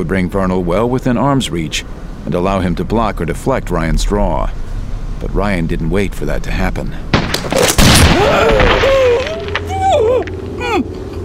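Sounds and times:
speech: 0.0 - 4.6, 5.2 - 7.6, 8.2 - 8.9
noisy rumble: 0.0 - 11.2
gunshot fired at range: 7.1 - 9.0.

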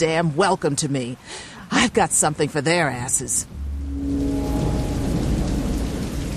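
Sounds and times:
speech: 0.0 - 4.5
deep constant rumble of near gale-force wind: 3.4 - 6.3
dense pouring acid rain in a storm at dawn: 3.4 - 6.3
low moaning tone: 3.5 - 6.3.

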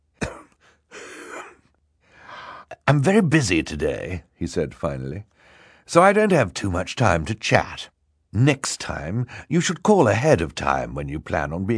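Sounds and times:
man coughing into a handkerchief: 0.1 - 1.8
speech: 2.9 - 5.3, 5.9 - 11.7.

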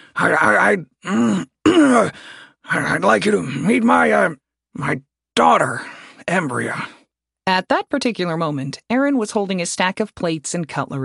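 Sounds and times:
speech: 0.2 - 11.0
voice performing a big male drake clearing his throat: 1.0 - 2.2.

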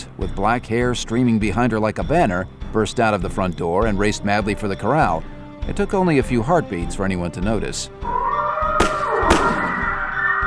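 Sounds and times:
speech: 0.2 - 8.3
gunshots fired across a yard near a corral: 8.8 - 10.4.

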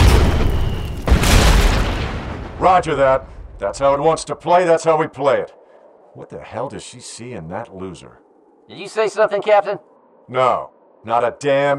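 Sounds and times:
high-explosive grenade-launcher round exploding in vegetation: 0.0 - 2.8
speech: 2.6 - 5.6, 6.2 - 11.7.

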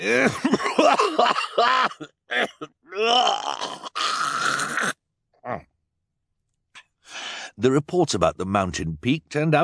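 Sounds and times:
speech: 0.0 - 0.9, 7.6 - 9.6
person groaning with strain: 0.0 - 1.2, 2.4 - 5.7
person in a coughing fit: 0.0 - 3.2.

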